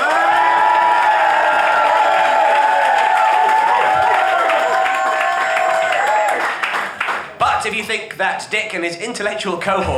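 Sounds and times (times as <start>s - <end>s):
large live audience cheering and applauding: 0.0s - 7.6s
speech: 8.2s - 9.9s.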